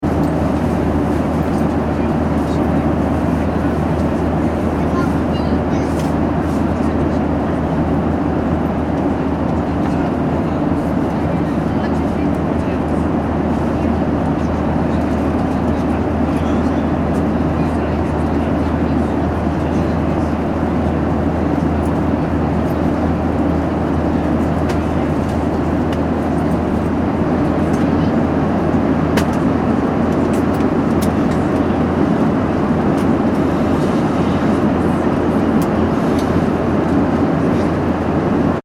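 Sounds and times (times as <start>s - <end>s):
Boeing 737-800 airliner cabin ambience in flight: 0.0s - 38.6s.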